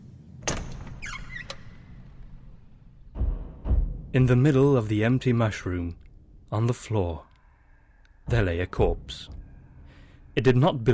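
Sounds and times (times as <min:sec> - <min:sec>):
door latch click: 0:00.4 - 0:02.2
squeaky creak of door hinges: 0:00.4 - 0:04.0
speech: 0:04.1 - 0:07.3, 0:08.3 - 0:09.4, 0:10.4 - 0:10.9.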